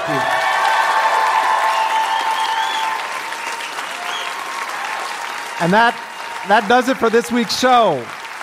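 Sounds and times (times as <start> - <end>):
live crowd clapping: 0.0 - 8.4
speech: 0.1 - 0.4, 5.6 - 8.2
whistles: 1.7 - 4.4.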